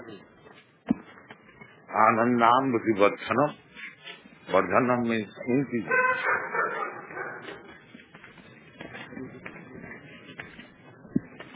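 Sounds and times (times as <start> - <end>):
steady murmur: 0.0 - 11.5
speech: 1.9 - 3.6, 4.5 - 6.1
dog barking and yipping: 5.8 - 7.8.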